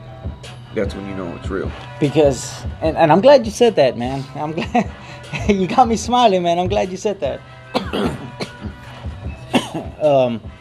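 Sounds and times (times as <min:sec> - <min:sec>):
speech: 0:00.4 - 0:08.2, 0:10.0 - 0:10.6
person coughing: 0:07.8 - 0:08.7, 0:09.5 - 0:10.1
throat clearing: 0:07.8 - 0:08.8, 0:09.5 - 0:10.1.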